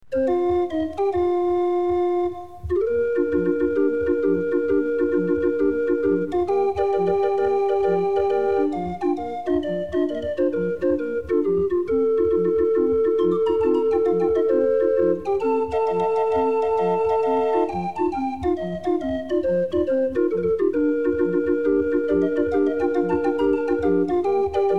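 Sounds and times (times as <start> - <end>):
organ: 0.1 - 24.7.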